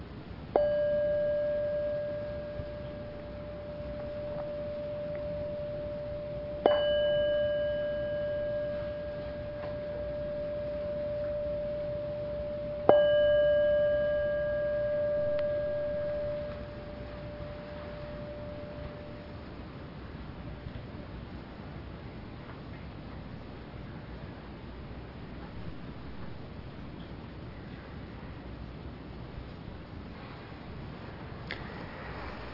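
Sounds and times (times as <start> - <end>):
meditation bell struck to end a sitting: 0.0 - 20.7.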